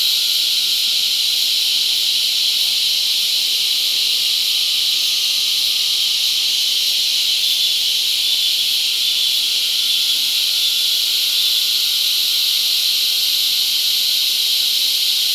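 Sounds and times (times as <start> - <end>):
cicada chorus of mating cicadas in La Convención, Peru: 0.0 - 15.3.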